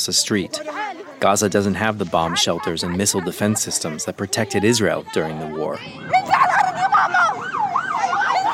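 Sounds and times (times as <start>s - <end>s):
speech: 0.0s - 6.4s
ambulance siren wailing on a war-hit street in Gaza: 4.6s - 8.5s.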